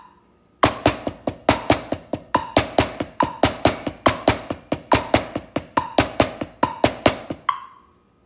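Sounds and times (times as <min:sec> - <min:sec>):
drums played with a single hand: 0:00.7 - 0:07.6.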